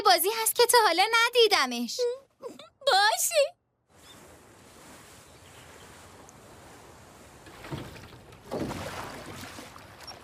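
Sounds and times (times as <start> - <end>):
speech: 0.1 - 3.6
swan pedal boat churning through water: 3.9 - 10.2.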